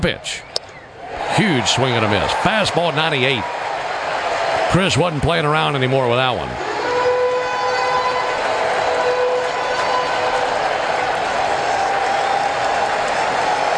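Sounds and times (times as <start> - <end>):
speech: 0.0 - 0.5, 1.3 - 3.6, 4.7 - 6.7
baseball stadium crowd cheering and roaring: 0.0 - 13.7.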